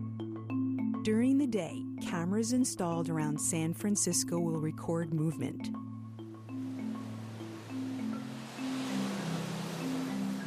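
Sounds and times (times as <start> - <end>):
speech: 0.2 - 5.8
low sustained droning musical tones: 6.0 - 10.4
ocean surf rolling in: 6.5 - 10.4.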